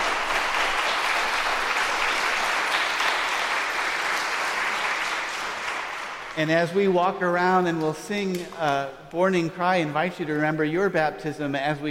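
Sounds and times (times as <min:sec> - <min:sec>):
church audience applauding to welcome a newly baptized member: 0:00.0 - 0:06.5
speech: 0:06.4 - 0:11.8.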